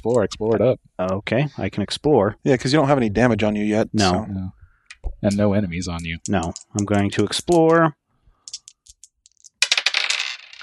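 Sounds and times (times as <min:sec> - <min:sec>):
speech: 0:00.0 - 0:08.0
board game tokens being added clicking: 0:04.9 - 0:07.8, 0:08.5 - 0:10.6
bright metallic clatter and rattle of board game tokens settling: 0:06.0 - 0:07.8, 0:08.5 - 0:10.6.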